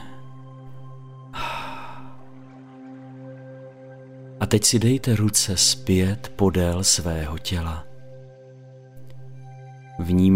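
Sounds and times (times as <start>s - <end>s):
soft steady sustained drone: 0.0s - 10.3s
deep exhale during a guided breathing exercise: 1.3s - 2.3s
speech: 4.5s - 7.9s, 10.0s - 10.3s.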